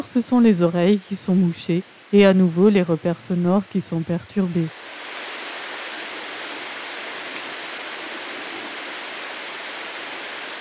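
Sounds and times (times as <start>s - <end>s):
speech: 0.0s - 4.9s
steady dense rain falling: 0.0s - 10.5s.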